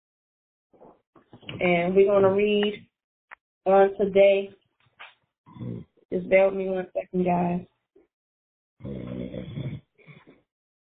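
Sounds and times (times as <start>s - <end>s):
speech: 1.6s - 2.9s, 3.6s - 4.6s, 5.6s - 7.7s, 8.8s - 9.2s
person snoring: 5.5s - 5.8s, 8.8s - 9.8s.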